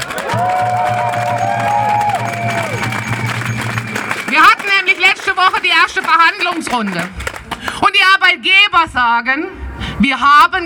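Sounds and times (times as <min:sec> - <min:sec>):
large outdoor crowd clapping and cheering at a rally: 0:00.0 - 0:08.0
shrill whistles: 0:00.9 - 0:05.1
speech: 0:05.7 - 0:07.2, 0:07.8 - 0:10.6.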